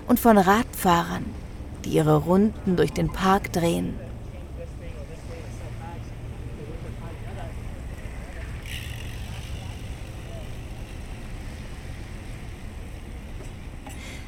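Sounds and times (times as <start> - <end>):
gusty wind: 0.0 - 14.2
water lapping against moored boats in a marina: 0.0 - 14.2
speech: 0.1 - 4.0
faint indistinct voices: 2.5 - 11.4.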